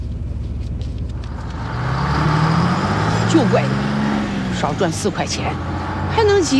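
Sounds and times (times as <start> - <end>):
passenger car engine rumble pulling off and driving: 0.0 - 6.5
speech: 3.3 - 3.8, 4.6 - 6.5.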